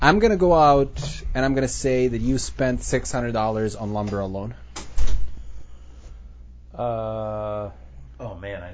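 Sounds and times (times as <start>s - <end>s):
speech: 0.0s - 4.6s, 6.8s - 8.7s
door opening with low-pitched thud and rattle: 4.8s - 5.4s.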